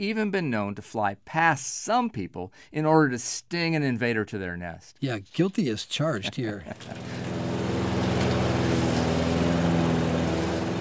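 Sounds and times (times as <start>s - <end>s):
speech: 0.0s - 7.4s
laughter: 5.9s - 7.2s
lawn mower engine running: 6.7s - 10.8s.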